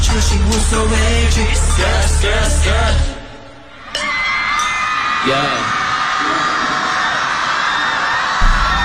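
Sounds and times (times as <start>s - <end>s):
speech: 0.1s - 3.2s, 5.3s - 5.7s
live audience screaming at a music performance: 3.8s - 8.8s.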